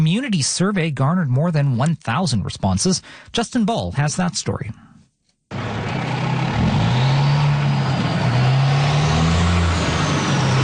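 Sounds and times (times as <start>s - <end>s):
speech: 0.0s - 4.9s
heavy construction trucks rumbling past in Riverside South Ottawa: 5.5s - 10.6s
road noise: 5.5s - 10.6s.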